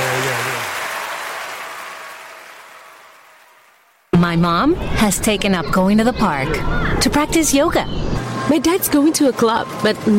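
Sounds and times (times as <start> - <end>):
audience clapping: 0.0 - 4.1
speech: 4.2 - 10.1.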